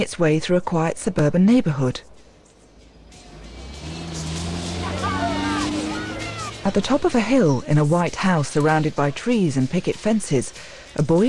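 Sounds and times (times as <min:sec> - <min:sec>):
speech: 0:00.0 - 0:02.1, 0:06.6 - 0:11.2
off-road 4x4 vehicles racing with engines revving: 0:02.7 - 0:09.1.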